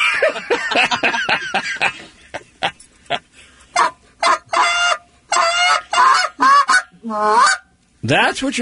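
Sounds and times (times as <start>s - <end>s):
laughter: 0.0s - 3.3s
speech: 0.2s - 2.2s, 7.1s - 7.4s, 8.1s - 8.5s
goose call blown imitating geese honking: 3.8s - 7.7s.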